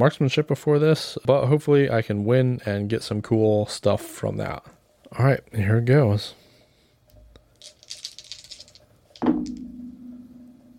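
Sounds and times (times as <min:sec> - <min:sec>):
speech: 0:00.0 - 0:06.4
dice rattling: 0:07.5 - 0:09.7.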